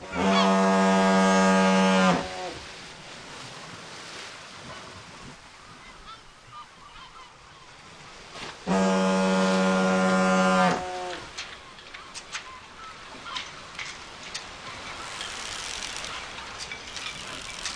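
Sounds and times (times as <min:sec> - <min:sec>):
deep foghorn blast from a coastal lighthouse: 0:00.0 - 0:02.6, 0:08.7 - 0:11.3
soft wash of surf: 0:00.0 - 0:17.7
soft wind: 0:00.0 - 0:17.7.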